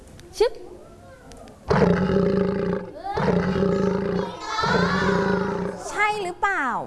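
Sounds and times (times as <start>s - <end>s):
speech: 0.4s - 0.7s
lion roaring: 1.7s - 5.9s.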